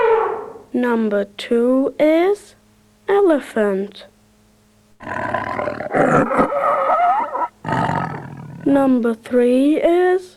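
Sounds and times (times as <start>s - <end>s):
lion roaring: 0.0s - 0.7s, 5.0s - 8.8s
speech: 0.7s - 4.1s, 5.0s - 6.9s, 8.7s - 10.3s.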